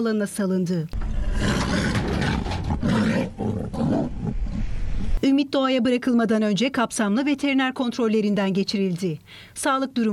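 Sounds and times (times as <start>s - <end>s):
speech: 0.0s - 1.8s, 5.2s - 10.1s
Amur tiger roaring: 1.0s - 5.1s.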